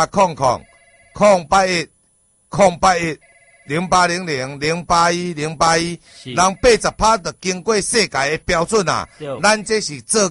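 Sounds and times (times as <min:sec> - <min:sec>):
speech: 0:00.0 - 0:01.9, 0:02.5 - 0:10.2
telephone ringing: 0:00.4 - 0:01.4, 0:03.2 - 0:04.0, 0:06.3 - 0:07.2
loud talk: 0:06.2 - 0:07.0, 0:09.2 - 0:09.6.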